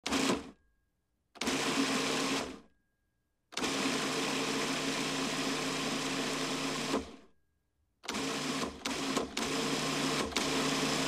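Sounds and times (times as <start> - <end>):
food processor running: 1.4 - 2.6, 3.6 - 7.2, 8.1 - 11.0.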